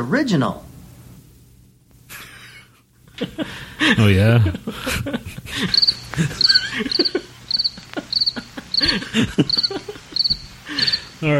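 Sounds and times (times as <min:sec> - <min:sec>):
speech: 0:00.0 - 0:00.6, 0:03.2 - 0:07.3, 0:08.8 - 0:10.4, 0:11.2 - 0:11.3
laughter: 0:02.1 - 0:11.1
cricket chirping: 0:05.5 - 0:11.3.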